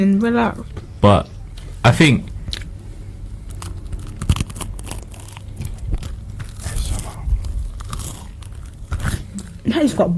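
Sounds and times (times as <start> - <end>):
speech: 0.0 - 2.3, 9.8 - 10.1
bites into crunchy shop-bought garlic bread crunching: 2.4 - 9.6
garlic bread tearing: 3.4 - 9.5
chewing: 3.5 - 9.6.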